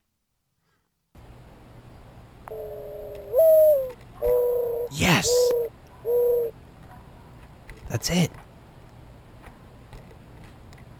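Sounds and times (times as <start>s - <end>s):
mourning dove cooing: 2.5s - 6.6s
speech: 5.0s - 5.6s, 7.9s - 8.4s.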